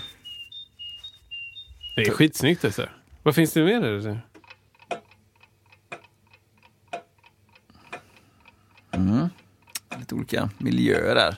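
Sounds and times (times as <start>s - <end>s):
great tit singing a two-note whistle: 0.0s - 2.6s
speech: 2.0s - 4.3s, 10.3s - 11.3s.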